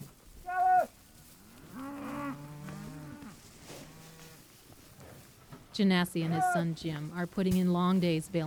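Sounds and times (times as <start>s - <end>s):
cattle mooing on a ranch: 0.0s - 0.9s, 1.5s - 4.4s, 6.2s - 6.8s
speech: 5.8s - 8.4s.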